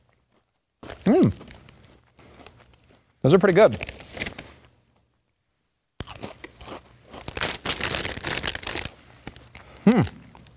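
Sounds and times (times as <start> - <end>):
crunching chili flavored potato chips: 0.8 - 4.7, 6.0 - 10.5
speech: 1.0 - 1.5, 3.2 - 4.0.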